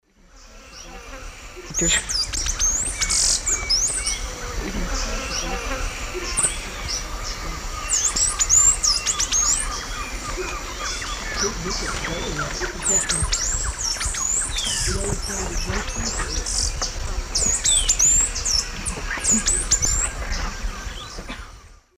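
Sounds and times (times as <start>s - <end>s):
Parkerthraustes humeralis singing in the Eastern Lowlands of South America: 0.4s - 21.9s.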